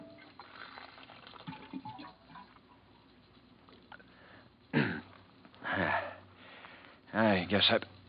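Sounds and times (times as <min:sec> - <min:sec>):
water gurgling out of an office water cooler as a drink is poured: 0:00.0 - 0:02.6
speech: 0:07.2 - 0:07.9.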